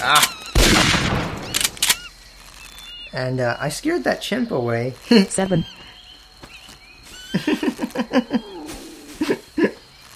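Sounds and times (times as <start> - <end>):
rifle gunshots in a video game: 0.6 - 2.0
speech: 3.1 - 5.9, 7.4 - 8.5
laughter: 7.3 - 9.8.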